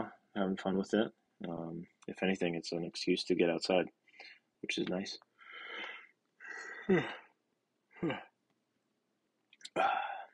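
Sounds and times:
speech: 0:00.4 - 0:05.3, 0:06.9 - 0:07.2, 0:08.0 - 0:08.3
breathy yawn: 0:06.5 - 0:07.3, 0:08.0 - 0:08.3, 0:09.7 - 0:10.3.

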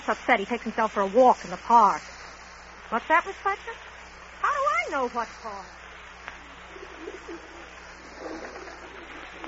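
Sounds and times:
steady hum: 0:00.0 - 0:09.4
speech: 0:00.1 - 0:02.1, 0:02.9 - 0:03.9, 0:04.5 - 0:05.8, 0:07.0 - 0:08.6
pigeon cooing: 0:06.7 - 0:09.4.

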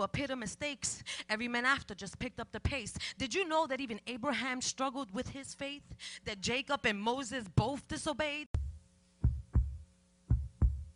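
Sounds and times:
speech: 0:00.0 - 0:08.6
deep heartbeat thumping: 0:08.6 - 0:10.9
low hum: 0:08.6 - 0:10.9.

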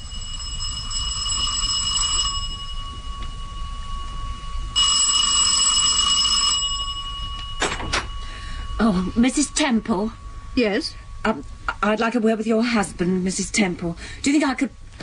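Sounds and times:
front doorbell ringing: 0:00.0 - 0:12.0
low rumble: 0:00.0 - 0:15.0
speech: 0:08.8 - 0:15.0.

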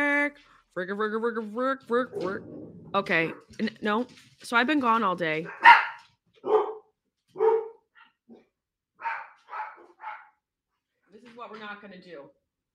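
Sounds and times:
speech: 0:00.8 - 0:05.8, 0:11.2 - 0:12.4
dogs barking: 0:05.4 - 0:10.4.

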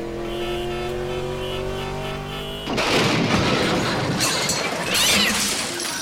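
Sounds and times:
cars revving in a pileup: 0:00.0 - 0:03.9
cars crashing in a pileup with crunching, shattering impacts: 0:02.7 - 0:06.0.

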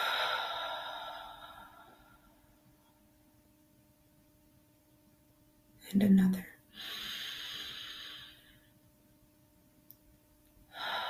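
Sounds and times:
deep breath released as a soft airy exhale: 0:00.0 - 0:02.3, 0:06.8 - 0:08.6, 0:10.7 - 0:11.0
speech: 0:05.9 - 0:07.0.

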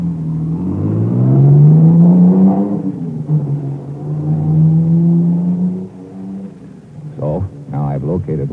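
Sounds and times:
car engine revving and driving off: 0:00.0 - 0:08.5.

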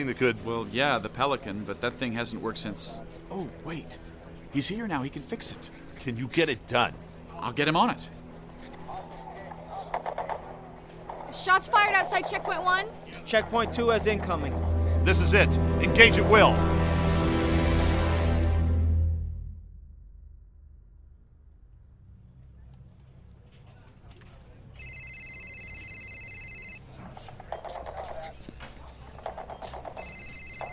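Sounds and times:
speech: 0:00.0 - 0:08.2, 0:11.3 - 0:16.8
steady low rumble: 0:13.4 - 0:23.7
satellite phone ringing in electronic trilling bursts: 0:24.8 - 0:26.8, 0:30.0 - 0:30.7.

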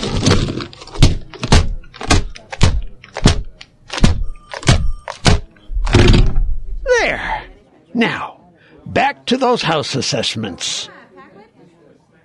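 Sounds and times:
plastic keyboard smashed against a desktop: 0:00.1 - 0:06.6
speech: 0:08.0 - 0:08.3, 0:09.3 - 0:11.0.

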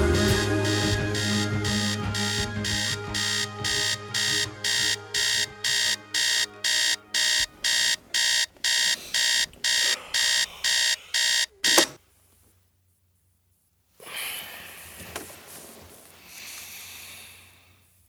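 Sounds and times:
sustained musical tone: 0:00.2 - 0:11.5
harsh alarm clock ringing: 0:00.2 - 0:12.0.

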